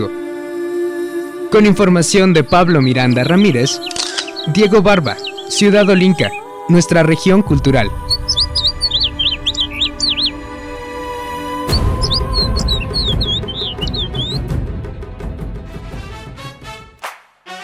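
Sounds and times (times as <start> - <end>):
speech: 1.5 - 8.0
birds chirping and tweeting at a university campus bird sanctuary in Tepatitlán: 1.6 - 14.8
steady low rumble: 7.5 - 15.4.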